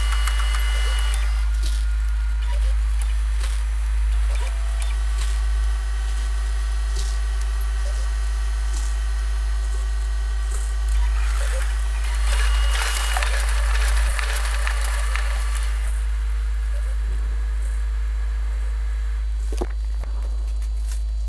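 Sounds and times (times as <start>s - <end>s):
photocopier whirring and fizzing: 0.0s - 21.2s
bursts of bright scratchy fizz: 12.0s - 16.0s.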